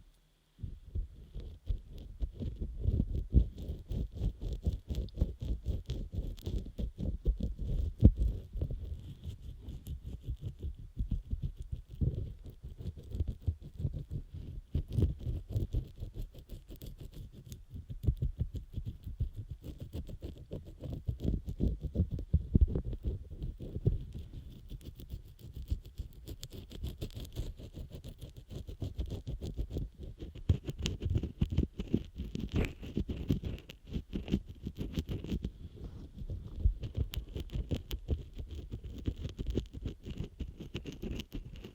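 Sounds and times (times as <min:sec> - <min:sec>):
rubbing and scrubbing against a microphone ear: 0:00.6 - 0:41.7.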